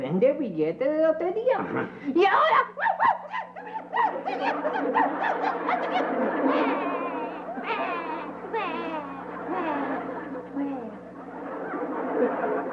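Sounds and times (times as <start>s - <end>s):
speech: 0.0s - 10.8s
laughter: 1.5s - 12.7s
boy crying with sobbing wails: 2.7s - 10.9s.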